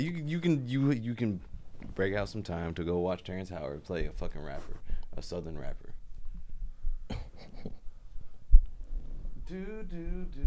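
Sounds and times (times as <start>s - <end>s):
speech: 0.0s - 5.9s, 9.5s - 10.4s
person clearing throat: 7.1s - 7.6s.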